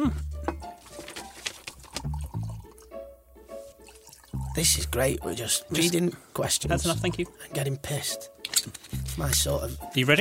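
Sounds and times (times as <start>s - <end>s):
liquid pouring into a glass: 1.8s - 3.0s, 3.8s - 4.7s
speech: 4.6s - 10.1s.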